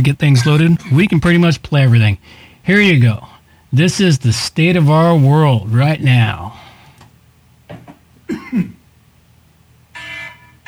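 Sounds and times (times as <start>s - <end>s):
speech: 0.0s - 6.6s, 8.3s - 8.8s
person clearing throat: 8.3s - 8.8s
rough cough: 8.3s - 8.8s.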